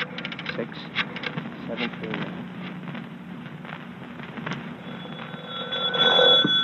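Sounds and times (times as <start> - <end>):
steady telephone ringing tone on the line: 4.9 - 6.6.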